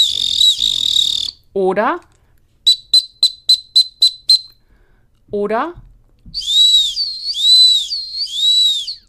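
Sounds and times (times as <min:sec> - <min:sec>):
dog training whistle blasts for a small search signal: 0:00.0 - 0:01.4, 0:02.7 - 0:04.6, 0:06.4 - 0:09.0
speech: 0:01.6 - 0:02.1, 0:05.3 - 0:05.9.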